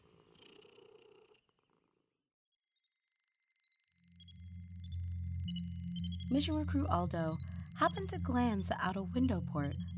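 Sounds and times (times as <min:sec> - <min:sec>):
cat purring: 0:00.0 - 0:02.2
speech: 0:05.6 - 0:09.9.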